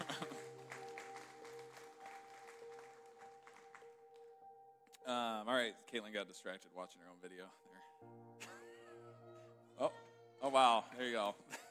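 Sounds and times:
room full of people clapping: 0.0 - 4.3
speech: 5.1 - 8.2, 9.8 - 11.6.

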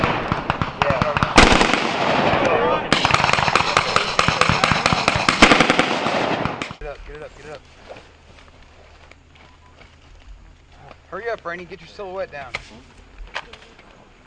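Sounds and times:
rapid gunfire during a combined arms military live fire exercise: 0.0 - 6.8
speech: 11.4 - 13.0.

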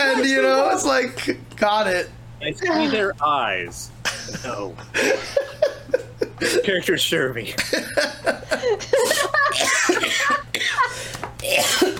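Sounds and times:
speech: 0.2 - 5.7, 6.4 - 11.9
people laughing: 4.0 - 6.8, 7.6 - 11.2
harsh coughs: 9.5 - 11.9.

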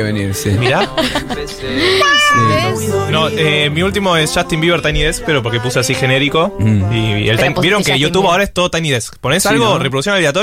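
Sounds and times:
speech: 0.0 - 10.4
laughter: 0.5 - 2.4
cat meowing: 1.8 - 2.8.

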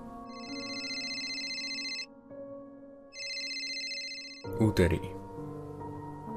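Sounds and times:
telephone taped to a bathroom ceiling ringing electronically: 0.3 - 2.1, 3.2 - 4.5
speech: 4.6 - 5.2.

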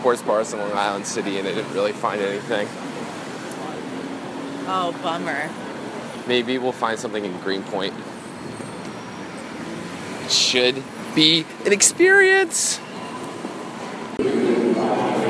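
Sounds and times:
speech: 0.0 - 3.2, 4.7 - 5.7, 6.3 - 8.1, 10.3 - 12.9
subway train rumbling: 13.4 - 15.2.

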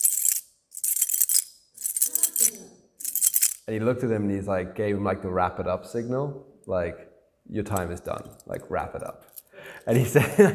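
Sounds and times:
keys jingling: 0.0 - 3.7, 8.0 - 9.5
speech: 3.7 - 10.5.

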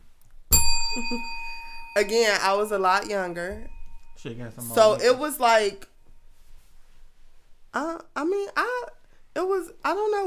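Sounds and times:
bell struck once ringing: 0.5 - 5.8
speech: 1.0 - 1.4, 2.0 - 5.9, 7.7 - 10.2.

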